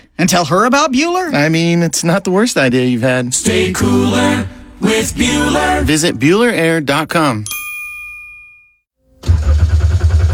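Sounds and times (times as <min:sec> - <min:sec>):
speech: 0:00.2 - 0:07.6
car engine cranking and sputtering without catching: 0:09.2 - 0:10.3.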